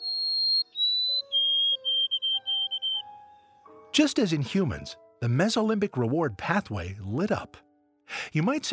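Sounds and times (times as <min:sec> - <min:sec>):
male white-throated sparrow singing clear whistles: 0:00.0 - 0:03.4
speech: 0:04.0 - 0:08.7.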